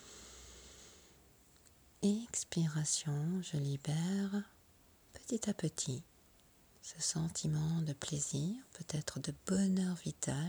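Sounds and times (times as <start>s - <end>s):
deep inhale during a guided meditation: 0.0s - 1.2s
speech: 2.0s - 4.6s, 5.3s - 6.1s, 6.8s - 10.4s.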